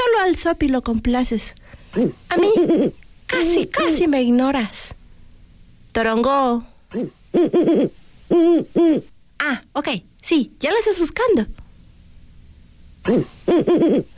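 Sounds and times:
speech: 0.2 - 5.0, 6.0 - 11.6, 13.0 - 14.1
owl hooting: 1.9 - 3.0, 6.9 - 9.2, 13.0 - 14.1.

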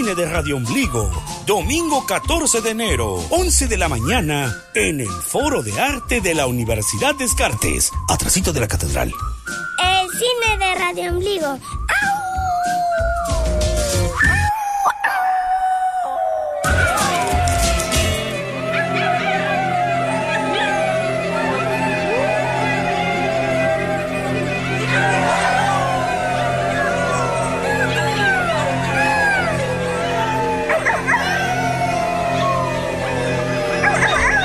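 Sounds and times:
speech: 0.0 - 11.8
pack of wolves howling in chorus with yips: 12.4 - 34.4.

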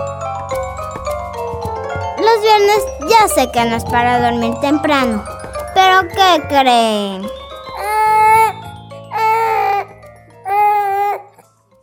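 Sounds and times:
speech: 2.3 - 7.4
baby girl crying after waking up: 7.7 - 11.4.

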